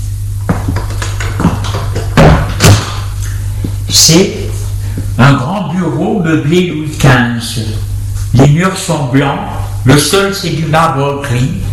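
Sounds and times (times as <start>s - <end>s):
steady low hum: 0.0s - 11.7s
knocks: 0.5s - 3.1s
louder fuller door thuds: 1.4s - 3.1s
speech: 4.0s - 4.4s, 5.2s - 7.8s, 8.4s - 11.7s.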